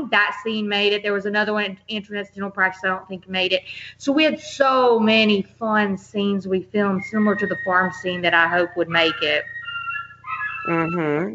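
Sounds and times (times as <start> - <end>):
speech: 0.0 - 9.6, 10.6 - 11.3
dog howling: 7.0 - 11.0.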